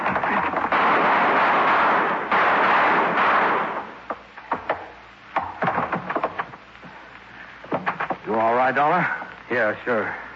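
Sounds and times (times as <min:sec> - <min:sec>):
gunfire blasting a door lock: 0:00.0 - 0:04.9
sharp gunshots and impacts on a door lock: 0:00.0 - 0:06.4
speech: 0:08.7 - 0:10.2.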